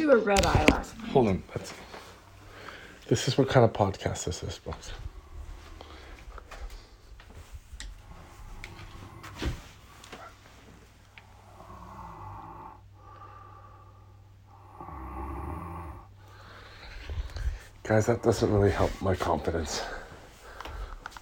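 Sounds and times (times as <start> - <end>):
speech: 0.0 - 2.0, 3.1 - 5.1, 17.9 - 20.0
grown man snoring steadily: 8.0 - 9.5, 11.4 - 16.7.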